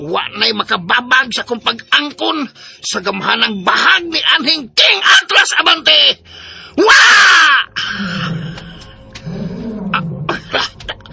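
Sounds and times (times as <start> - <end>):
speech: 0.0 - 8.4
big tiger roaring: 7.8 - 10.8.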